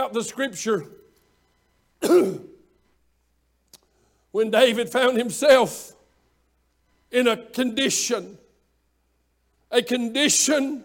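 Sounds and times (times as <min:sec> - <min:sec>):
speech: 0:00.0 - 0:01.0, 0:02.0 - 0:02.5, 0:04.4 - 0:06.0, 0:07.1 - 0:08.4, 0:09.7 - 0:10.8
man preaching a sermon clearing throat: 0:02.0 - 0:02.6.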